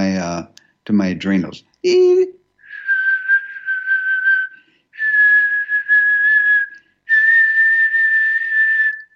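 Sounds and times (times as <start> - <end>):
speech: 0.3 - 2.4
person whistling long steady near-pure tones: 2.6 - 9.1.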